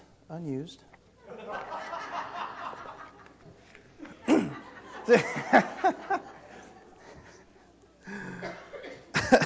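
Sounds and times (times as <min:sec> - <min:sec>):
laughter: 0:01.2 - 0:07.5, 0:09.2 - 0:09.4
speaker coughing in a church: 0:04.2 - 0:04.6, 0:08.1 - 0:09.4.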